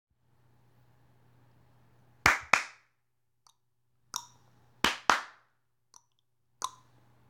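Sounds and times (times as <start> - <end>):
tongue and hand rhythm: 4.2 - 5.3, 6.0 - 6.9.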